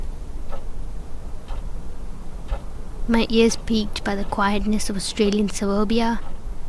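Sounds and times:
clock ticking: 0.0s - 0.7s, 1.4s - 1.7s, 2.4s - 6.4s
low constant hum: 0.0s - 6.6s
speech: 3.1s - 6.3s.

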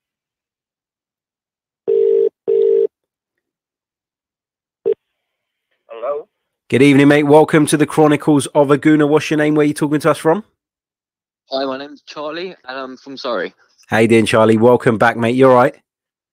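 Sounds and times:
telephone line ringing tones while a number is dialed: 1.9s - 2.9s
speech: 6.0s - 10.5s, 11.5s - 15.8s.

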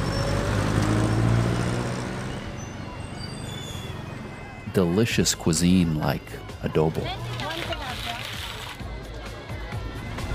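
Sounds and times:
busy street traffic road noise: 0.0s - 10.3s
jeepney bus engines idling in street traffic: 0.0s - 10.3s
speech: 4.8s - 7.5s.

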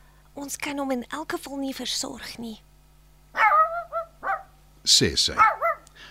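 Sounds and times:
speech: 0.4s - 2.7s, 4.8s - 5.5s
small dog barking with high-pitched yaps: 3.3s - 4.6s, 5.3s - 5.9s.

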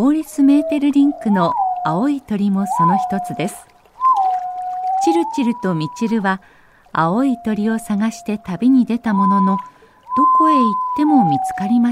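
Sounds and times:
speech: 0.0s - 3.7s, 5.0s - 11.9s
White-bellied green pigeon whistling at Hirugatake in Yamanashi Prefecture Japan: 0.6s - 2.0s, 2.6s - 3.4s, 4.0s - 6.1s, 9.1s - 11.8s.

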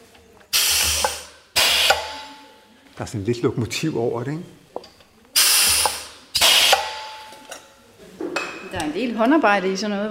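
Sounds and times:
pneumatic wine bottle capsule applicator hissing with a mechanical clunk: 0.5s - 2.4s, 5.4s - 7.3s
speech: 3.0s - 4.6s, 8.8s - 10.0s.

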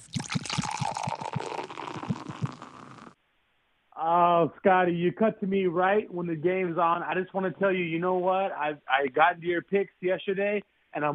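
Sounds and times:
beer pouring into a glass: 0.0s - 3.1s
speech: 4.0s - 11.1s.

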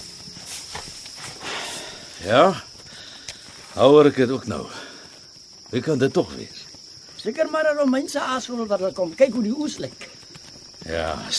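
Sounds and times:
faint high hiss of noise: 0.0s - 4.9s
single horse's hooves clopping: 0.0s - 11.3s
speech: 2.2s - 2.7s, 3.8s - 4.8s, 5.7s - 6.6s, 7.2s - 10.1s, 10.8s - 11.3s.

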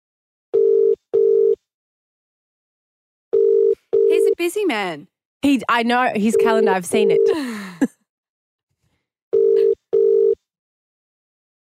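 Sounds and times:
phone ringback tone of an outgoing call from a personal phone: 0.6s - 1.6s, 3.4s - 4.4s, 9.4s - 10.4s
speech: 4.4s - 8.0s.

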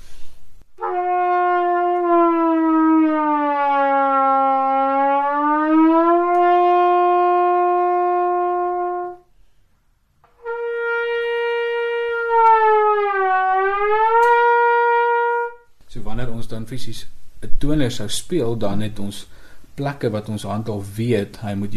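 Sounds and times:
trombone playing long sliding notes: 0.8s - 9.3s, 10.2s - 15.7s
speech: 16.7s - 21.7s.

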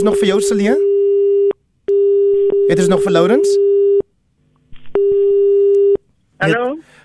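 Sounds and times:
speech: 0.0s - 0.9s, 2.7s - 3.6s, 6.4s - 6.9s
telephone busy tone after a dropped call: 0.8s - 4.0s, 4.9s - 6.0s.

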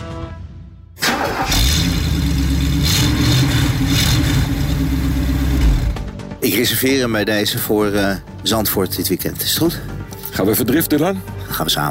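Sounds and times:
V8 car engine rated at 231 hp starting and running: 1.0s - 6.2s
speech: 6.6s - 11.9s.

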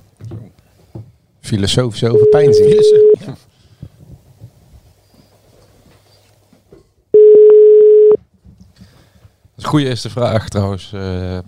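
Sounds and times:
speech: 1.5s - 3.4s, 9.7s - 11.4s
telephone tone as a call is placed: 2.2s - 3.2s, 7.2s - 8.2s.

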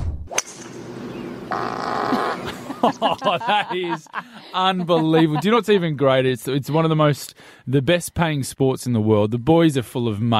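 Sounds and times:
steady noise: 0.0s - 10.3s
loud buzzy fart caught on a man's microphone: 1.5s - 2.6s
laughter: 2.1s - 7.0s
speech: 2.8s - 10.3s.

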